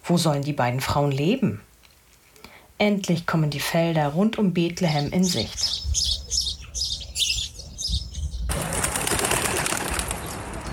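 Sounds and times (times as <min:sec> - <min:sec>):
speech: 0:00.1 - 0:01.7, 0:02.8 - 0:06.1
birds chirping in harvest fields: 0:04.4 - 0:10.7
flock of birds flapping wings taking off: 0:08.5 - 0:10.7.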